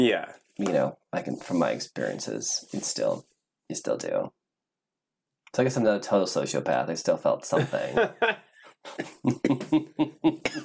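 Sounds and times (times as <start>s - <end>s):
speech: 0.0s - 4.4s, 5.5s - 10.6s
laughter: 7.6s - 10.4s
harsh coughing: 8.8s - 10.6s.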